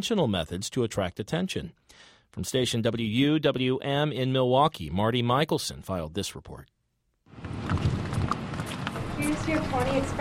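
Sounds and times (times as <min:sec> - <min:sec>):
speech: 0:00.0 - 0:06.7, 0:09.4 - 0:10.2
steady broad noise: 0:00.0 - 0:10.2
hooves of a chocolate brown mare clip-clopping while ridden: 0:07.4 - 0:10.2.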